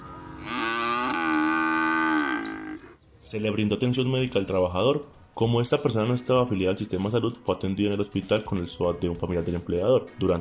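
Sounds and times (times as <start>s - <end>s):
cow mooing: 0.1s - 3.0s
speech: 3.3s - 10.3s.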